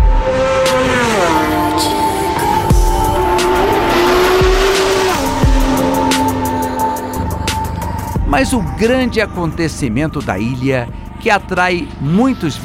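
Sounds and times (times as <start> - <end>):
racing motorcycles speeding past: 0.2 - 8.0
speech: 8.4 - 12.6.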